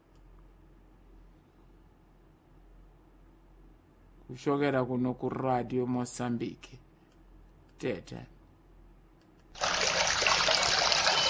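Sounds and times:
speech: 4.3s - 6.8s, 7.8s - 8.3s
water trickling and splashing: 9.6s - 11.2s.

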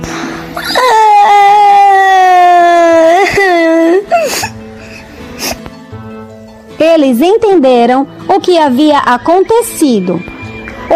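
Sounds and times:
voice acting out a boy crying: 0.6s - 5.6s
sobbing gasp: 3.2s - 5.8s
speech: 7.1s - 10.3s.

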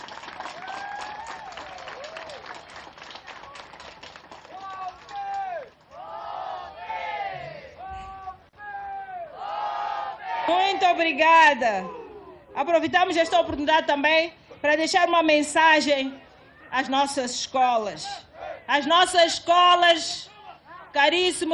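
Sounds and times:
large crowd applauding: 0.0s - 5.8s
crowd cheering: 0.0s - 11.0s
speech: 10.5s - 12.0s, 12.6s - 20.3s, 21.0s - 21.5s.

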